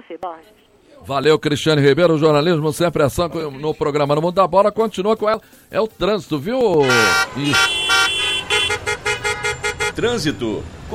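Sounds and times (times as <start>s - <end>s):
speech: 0.1s - 7.8s, 10.0s - 10.9s
car horn honking while being adjusted: 6.7s - 10.2s.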